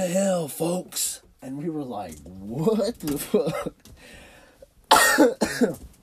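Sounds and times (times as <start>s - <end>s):
speech: 0.0s - 4.2s, 5.2s - 5.9s
person coughing harshly: 3.2s - 3.8s, 4.9s - 5.8s.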